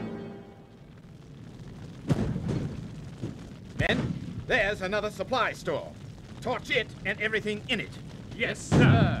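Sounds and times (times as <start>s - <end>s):
artillery cannon fire with 12-pound cannonballs in town streets: 1.8s - 4.5s, 8.0s - 9.1s
speech: 3.9s - 9.1s.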